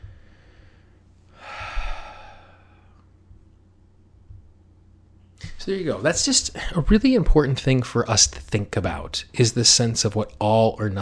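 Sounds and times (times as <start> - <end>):
deep breath: 0.0 - 3.1
low hum: 0.0 - 6.8
speech: 5.6 - 11.0.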